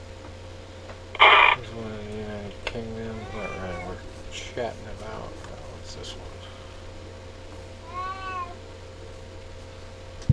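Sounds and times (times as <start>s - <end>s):
low steady hum: 0.0s - 10.3s
cat meowing: 3.0s - 4.0s, 7.8s - 8.6s
speech: 4.6s - 5.1s.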